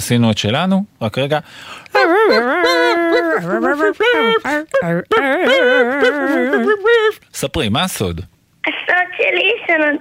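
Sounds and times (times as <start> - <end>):
speech: 0.0 - 10.0
puppy whimpering and howling: 1.9 - 7.2.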